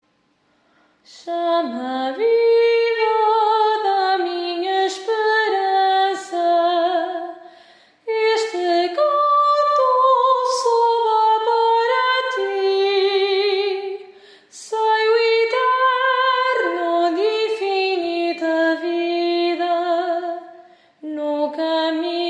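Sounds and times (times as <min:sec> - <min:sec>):
soprano singing a hymn refrain: 0:01.1 - 0:22.2.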